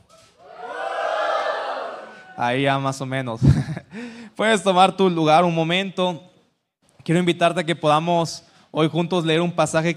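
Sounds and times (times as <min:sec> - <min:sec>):
standing church audience shouting collectively to the Lord: 0:00.4 - 0:02.4
speech: 0:02.4 - 0:06.3, 0:07.1 - 0:09.9
laughter: 0:03.4 - 0:03.9.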